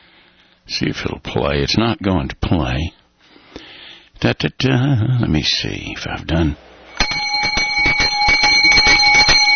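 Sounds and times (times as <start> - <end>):
speech: 0.7 - 3.0, 4.2 - 7.2
loud electric school bell ringing with rattling clapper: 6.9 - 9.5.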